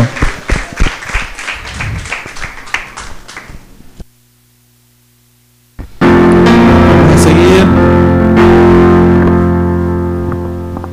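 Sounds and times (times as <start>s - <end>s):
applause at a prize draw: 0.0s - 3.7s
low steady hum: 0.0s - 10.9s.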